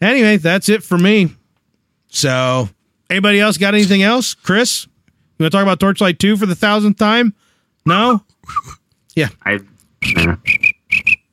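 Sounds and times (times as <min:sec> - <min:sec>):
speech: 0:00.0 - 0:01.4, 0:02.1 - 0:10.6
crickets chirping in short paired trills: 0:10.0 - 0:11.3.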